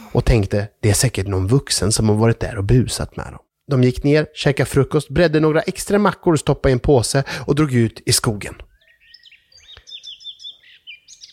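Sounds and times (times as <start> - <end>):
speech: 0.1 - 8.7
birds chirping in a forest: 8.4 - 11.3.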